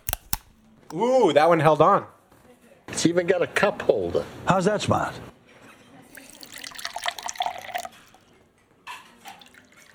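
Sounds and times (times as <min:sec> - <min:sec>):
speech: 0:00.9 - 0:02.2, 0:03.0 - 0:05.3
bottled water pouring from a bottle: 0:06.1 - 0:08.3, 0:09.2 - 0:09.9.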